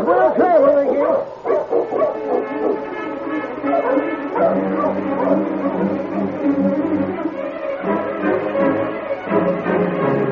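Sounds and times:
team of sled dogs barking and yipping: 0.0s - 10.2s
sled dogs whining: 0.1s - 7.6s.

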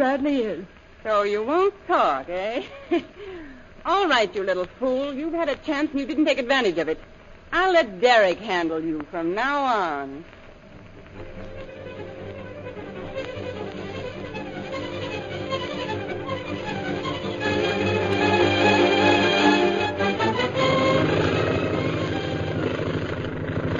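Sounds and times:
speech: 0.1s - 10.4s
propeller plane engine drone circling for a landing: 10.7s - 23.7s.

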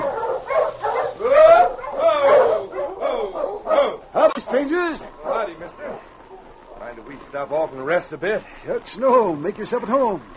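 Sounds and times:
pack of sled dogs pulling a dog sled barking, yelping and howling: 0.0s - 7.0s
speech: 4.6s - 6.1s, 6.9s - 10.3s.

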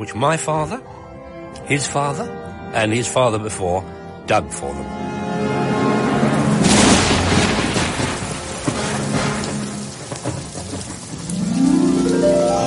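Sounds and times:
speech: 0.0s - 5.5s
deep thunder rumbling: 6.0s - 12.6s
heavy rain pouring: 6.0s - 12.6s.

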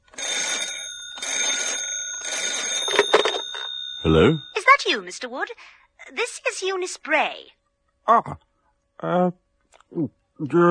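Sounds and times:
telephone ringing: 0.0s - 5.2s
speech: 4.0s - 10.7s.

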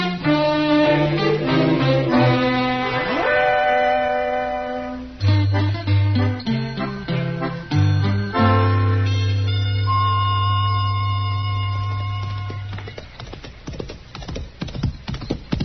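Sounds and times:
sustained orchestral chords: 0.0s - 12.7s
horse hooves clip-clopping in a trotting rhythm: 11.5s - 15.6s.

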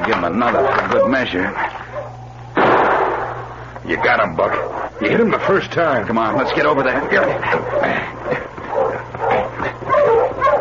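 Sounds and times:
speech: 0.1s - 1.8s, 3.9s - 8.1s
dog barking and yipping: 0.3s - 2.3s, 3.9s - 10.5s.

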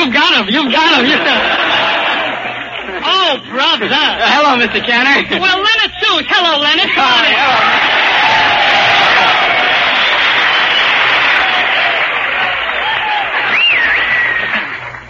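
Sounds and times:
laughter: 0.5s - 5.4s, 6.8s - 15.0s
speech: 0.6s - 1.5s, 3.3s - 8.0s
studio audience applause: 0.9s - 3.3s, 7.2s - 15.0s
scattered audience cheers and whoops: 7.5s - 14.8s.

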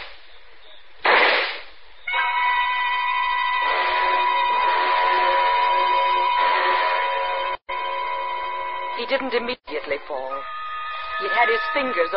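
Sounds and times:
handgun gunshots: 1.1s - 1.6s
sustained steady tonal chord: 2.1s - 12.1s
speech: 9.1s - 10.5s, 11.2s - 12.1s.

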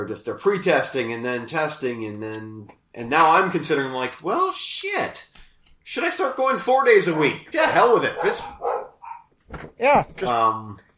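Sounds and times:
speech: 0.0s - 8.7s, 9.8s - 10.8s
dogs barking and howling: 8.0s - 9.3s.

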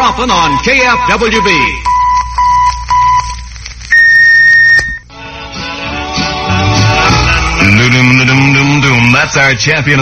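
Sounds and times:
radio station electronic time tone beeps: 0.0s - 5.0s
speech: 0.1s - 2.0s, 7.7s - 8.5s, 9.2s - 10.0s
music: 5.1s - 10.0s.

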